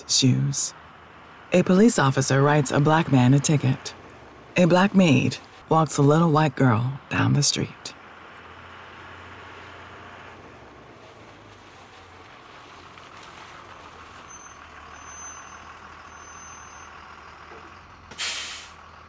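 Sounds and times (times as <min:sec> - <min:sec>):
bus engine rumbling: 0:00.0 - 0:19.0
speech: 0:00.1 - 0:00.8, 0:01.5 - 0:04.0, 0:04.6 - 0:08.0
bus air brakes hissing: 0:18.1 - 0:18.8.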